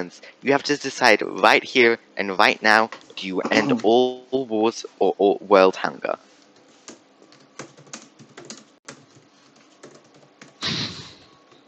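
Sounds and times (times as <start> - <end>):
speech: 0.0 - 6.3
typing on a computer keyboard: 6.8 - 10.6.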